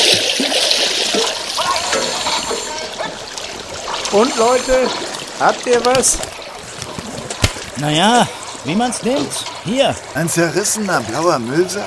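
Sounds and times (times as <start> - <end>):
divers surfacing, splashing river water: 0.0 - 11.8
speech: 4.1 - 6.4, 7.8 - 11.8.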